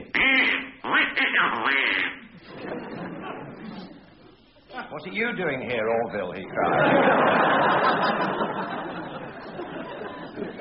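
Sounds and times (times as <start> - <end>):
duck quacking: 0.0 - 2.3
laughter: 2.2 - 4.4, 6.4 - 10.5
speech: 4.9 - 8.9.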